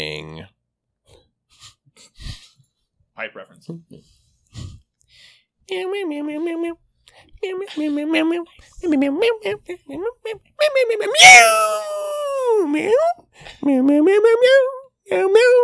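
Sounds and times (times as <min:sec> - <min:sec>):
speech: 0:03.2 - 0:04.2, 0:05.7 - 0:15.6
cat meowing and yowling: 0:11.1 - 0:12.3.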